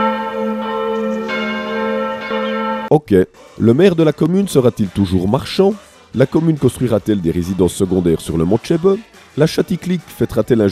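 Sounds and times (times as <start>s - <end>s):
church bells ringing: 0.0s - 2.9s
speech: 2.9s - 10.7s.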